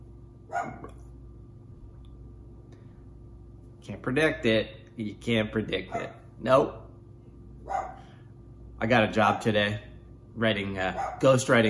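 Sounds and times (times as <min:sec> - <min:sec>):
low steady hum: 0:00.0 - 0:11.6
dog barking: 0:00.5 - 0:00.9, 0:05.9 - 0:06.2, 0:07.6 - 0:08.0, 0:11.0 - 0:11.3
dog yelping: 0:00.5 - 0:00.9, 0:07.7 - 0:08.0, 0:11.0 - 0:11.2
speech: 0:03.9 - 0:06.8, 0:08.8 - 0:11.6.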